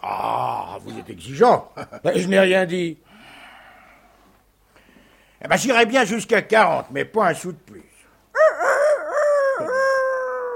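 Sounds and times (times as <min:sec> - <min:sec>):
speech: 0:00.8 - 0:03.0, 0:05.4 - 0:07.9
person imitating a rooster crowing: 0:08.4 - 0:10.5.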